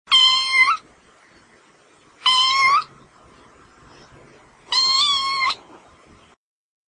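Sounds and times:
pet cat meowing: 0.1s - 0.8s, 2.2s - 2.9s, 4.7s - 5.6s.

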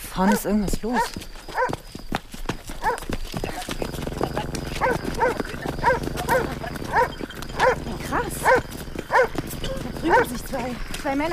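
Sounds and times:
brisk footsteps: 0.0s - 11.3s
speech: 0.2s - 1.3s, 10.7s - 11.3s
dog barking aggressively outdoors in a street: 0.2s - 1.8s, 2.8s - 3.0s, 4.8s - 10.4s.

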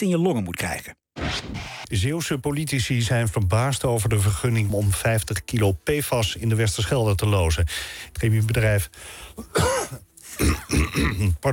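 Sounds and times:
speech: 0.0s - 11.5s
throat clearing cough: 9.5s - 11.4s.

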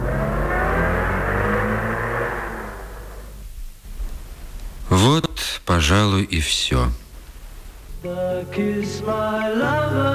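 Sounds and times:
car engine droning as the vehicle pulls away: 0.0s - 4.4s
speech: 5.8s - 7.0s, 8.0s - 10.1s.

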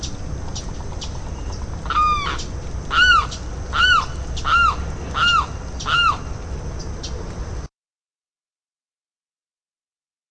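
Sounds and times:
limpkin Aramus guarauna giving loud wailing calls: 1.4s - 6.3s.

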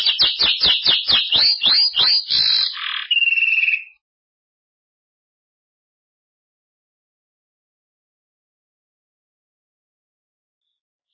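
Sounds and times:
Belgian canary singing buzzy and rolling trills: 0.0s - 4.0s.

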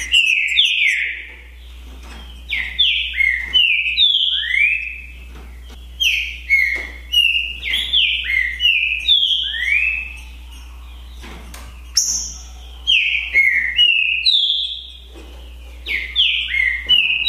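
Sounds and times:
two green-winged saltators singing in a song contest: 0.0s - 17.2s.

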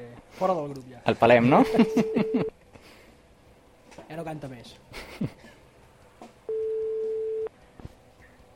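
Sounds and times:
speech: 0.3s - 2.6s, 4.0s - 5.5s
laughter: 1.6s - 2.5s, 4.9s - 5.6s
telephone ringback tone of a live radio show calling a listener: 6.5s - 7.5s.

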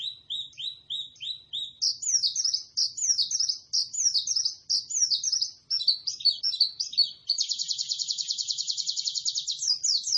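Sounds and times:
white-eye singing lively high sliding chirps: 0.0s - 10.1s.

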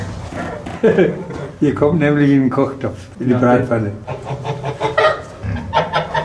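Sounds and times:
laughter: 0.6s - 1.6s
speech: 0.8s - 4.4s
flock of agitated frightened geese honking: 4.0s - 6.2s.

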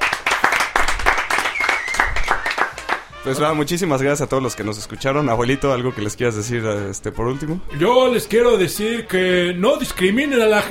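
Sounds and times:
audience applause during an interview: 0.0s - 3.1s
speech: 3.2s - 10.6s.

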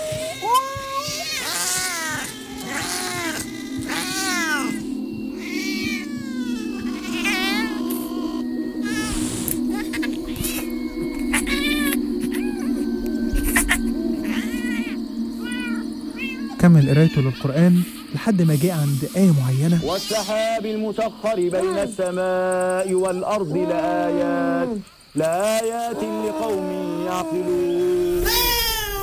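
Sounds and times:
several cats meowing and caterwauling: 0.0s - 18.8s, 19.6s - 20.6s, 25.6s - 29.0s
steady low drone: 1.7s - 23.7s
speech: 16.6s - 28.5s.

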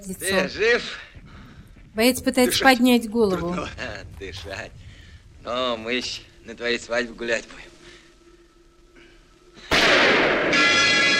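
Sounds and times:
speech: 0.0s - 1.1s, 2.0s - 4.8s, 5.4s - 7.7s
gunshot in a birch wood: 9.7s - 11.1s.

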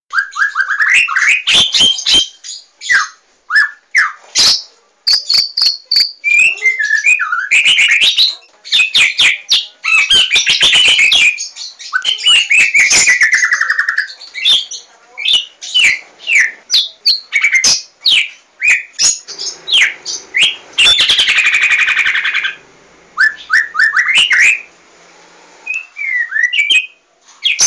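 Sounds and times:
White-rumped shama singing loud whistled notes with buzzy rattles and clicks: 0.1s - 22.6s, 23.2s - 24.7s, 25.6s - 27.6s.

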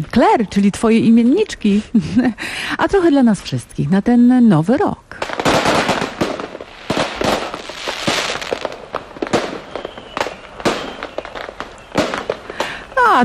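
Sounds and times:
speech: 0.0s - 5.3s
fireworks exploding around New Year's Eve: 4.7s - 13.2s.

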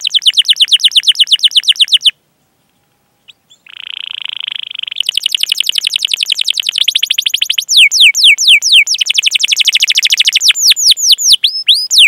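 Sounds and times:
domestic canary singing trilled phrases and whistles: 0.0s - 2.2s, 3.2s - 12.0s.

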